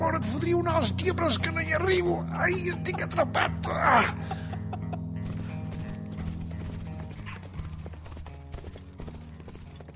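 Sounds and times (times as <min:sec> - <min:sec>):
speech: 0:00.2 - 0:04.5
laughter: 0:02.3 - 0:05.2
several horses' hooves clip-clopping: 0:04.8 - 0:09.9.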